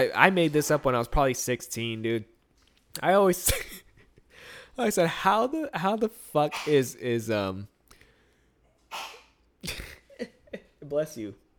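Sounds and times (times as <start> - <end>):
speech: 0.0 - 2.3, 3.0 - 3.8, 4.8 - 7.7, 10.9 - 11.4
woman sneezing: 8.9 - 9.4.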